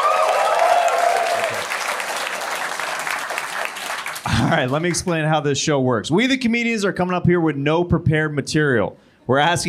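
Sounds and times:
people cheering: 0.0 - 5.1
audience applause in a room: 0.0 - 5.2
speech: 4.3 - 9.6.

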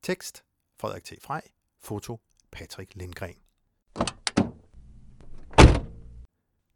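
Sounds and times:
speech: 0.0 - 3.4, 4.0 - 4.2
McLaren 720S roof-hinged car door unlatching: 4.0 - 4.5, 5.2 - 6.0
McLaren 720S roof-hinged car door swinging open: 5.2 - 6.1.

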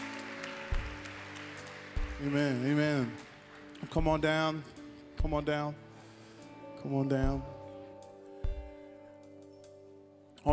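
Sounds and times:
crowd applauding: 0.0 - 5.0
speech: 2.2 - 5.8, 6.8 - 7.5.

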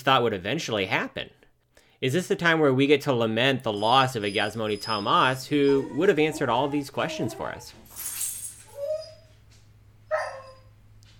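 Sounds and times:
speech: 0.0 - 1.4, 2.0 - 8.1
pet dog yelping: 3.7 - 9.4, 10.1 - 11.1.

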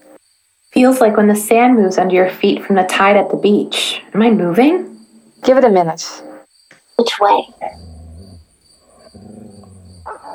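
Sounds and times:
speech: 0.8 - 6.3, 7.0 - 7.9
guard dog growling: 7.1 - 10.3.

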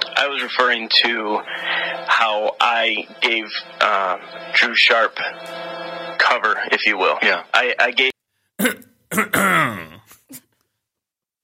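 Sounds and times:
speech: 0.2 - 9.6
man clearing his throat: 8.6 - 10.4.

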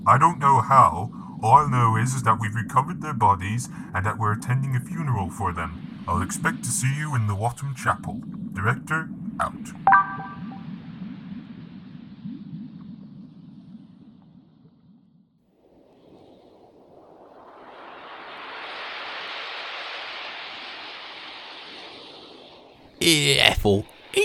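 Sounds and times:
speech: 0.0 - 10.3, 23.0 - 24.2
ocean surf rolling onto a sunny sandy beach: 17.8 - 22.2.

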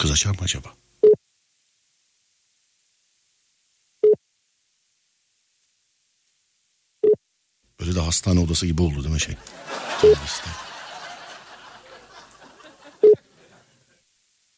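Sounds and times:
speech: 0.0 - 0.8, 7.9 - 10.7
laughter: 9.3 - 14.0
telephone line beeping while a call goes through: 9.9 - 10.4.

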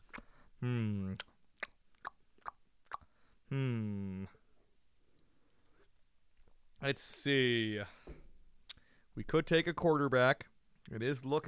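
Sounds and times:
gum being chewed: 0.0 - 0.4, 1.0 - 3.1
long hummed vocal tones: 0.6 - 1.2, 3.5 - 4.4
speech: 0.6 - 1.3, 6.9 - 8.2, 9.2 - 11.4.

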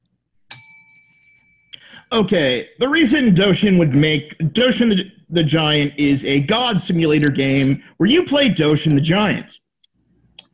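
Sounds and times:
small bell struck with a bright clear ding: 0.5 - 1.8
speech: 2.1 - 9.6.

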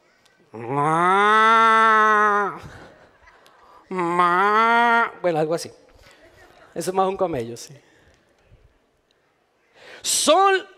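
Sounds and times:
speech: 0.5 - 1.0, 5.3 - 5.9, 6.8 - 7.9, 10.0 - 10.7
person imitating a cow mooing: 0.6 - 2.6, 3.9 - 5.2.

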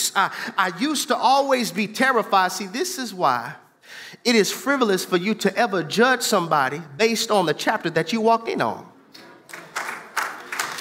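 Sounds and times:
speech: 0.1 - 8.9
small audience clapping: 9.2 - 10.8.

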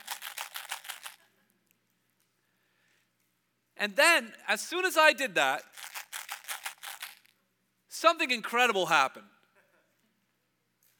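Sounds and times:
small plastic box of Tic Tac mints shaken: 0.0 - 1.2, 5.6 - 7.2
speech: 3.8 - 5.7, 8.0 - 9.4.

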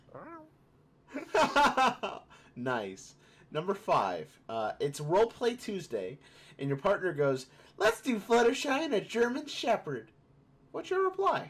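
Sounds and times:
person imitating cat meow: 0.0 - 0.5
laughter: 1.2 - 2.2
speech: 1.4 - 11.4.

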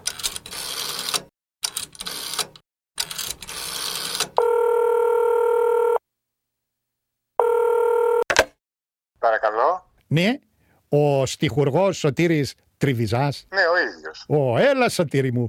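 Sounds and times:
telephone dialing in quick mechanical bursts: 0.1 - 6.0, 7.4 - 8.3
speech: 9.3 - 15.4.

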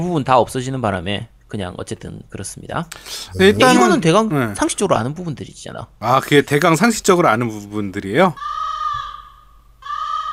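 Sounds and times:
speech: 0.0 - 8.6
crow cawing: 8.4 - 10.3.

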